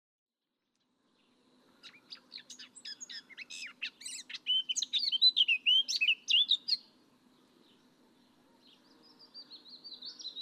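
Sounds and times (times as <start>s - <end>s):
faint low hum: 0.4s - 10.3s
Eurasian blackcap Sylvia atricapilla singing: 1.8s - 6.9s, 8.6s - 10.3s.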